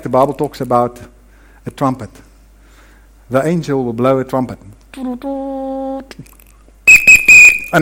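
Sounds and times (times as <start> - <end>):
speech: 0.0 - 2.3, 3.3 - 7.0
whistle blown as a demonstration of the end-of-game signal: 6.9 - 7.8.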